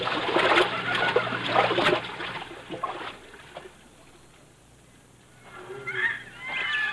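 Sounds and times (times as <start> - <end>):
someone wading across a river splashing in hip-deep water: 0.0 - 3.7
faint bird calls: 5.4 - 6.9.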